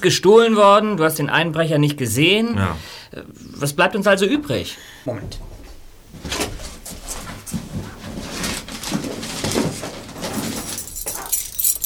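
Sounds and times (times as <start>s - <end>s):
speech: 0.0s - 5.5s
bunch of keys jangling: 10.2s - 11.8s.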